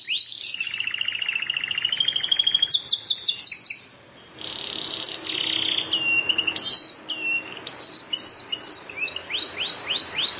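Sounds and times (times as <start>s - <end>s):
plain prinia high down-slurred chirps: 0.0s - 10.3s
plain prinia song with buzzy trill of rapid ticking notes: 0.0s - 10.3s.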